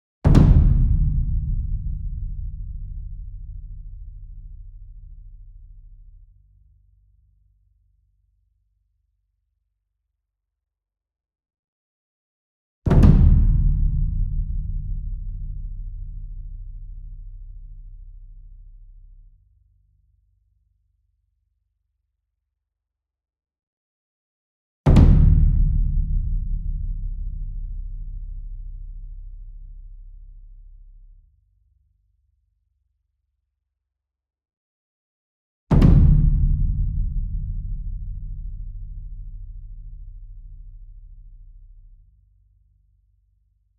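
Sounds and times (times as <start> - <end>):
ensemble concert bass drum and taiko drum flam: 0.3 - 5.3, 12.9 - 17.4, 24.9 - 28.7, 35.7 - 40.9.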